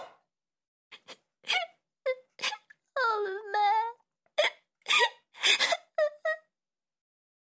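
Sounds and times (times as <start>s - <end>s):
girl sobbing and whimpering: 1.0s - 6.5s.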